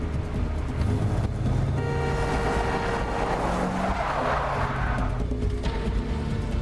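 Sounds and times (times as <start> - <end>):
car engine roaring: 0.0 - 6.5
car tires screeching and skidding as it is forced off the road: 0.7 - 5.4.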